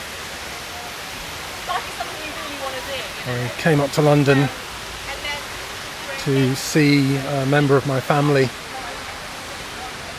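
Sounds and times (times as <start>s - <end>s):
crowd noise in a busy city square: 0.0s - 10.1s
traffic noise in a busy city square: 0.0s - 10.1s
speech: 2.8s - 4.6s, 6.2s - 8.6s.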